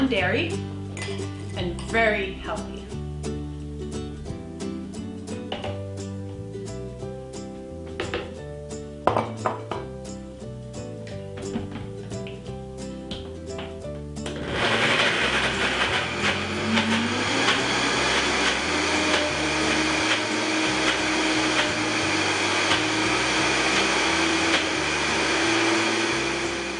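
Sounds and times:
light music: 0:00.0 - 0:26.7
speech: 0:00.1 - 0:02.8
blender motor blending avocado chocolate mousse mixture: 0:14.3 - 0:26.7.

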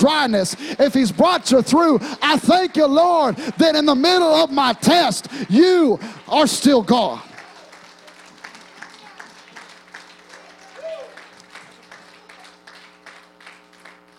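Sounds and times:
speech: 0:00.0 - 0:07.3
congregation clapping: 0:00.0 - 0:14.1.

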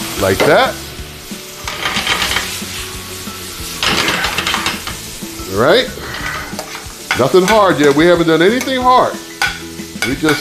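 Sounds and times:
vegetables stir-frying and sizzling in an oiled pan: 0:00.0 - 0:10.3
speech: 0:00.2 - 0:00.8, 0:05.5 - 0:06.0, 0:07.2 - 0:09.3, 0:10.0 - 0:10.3
scraping stirs in a pan: 0:01.6 - 0:05.2, 0:05.8 - 0:10.3.

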